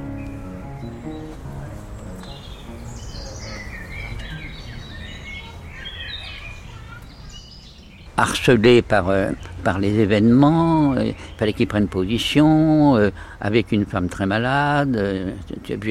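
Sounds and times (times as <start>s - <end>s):
low murmur: 0.0s - 8.2s
birds chirping and twittering: 0.0s - 15.9s
speech: 8.2s - 15.9s.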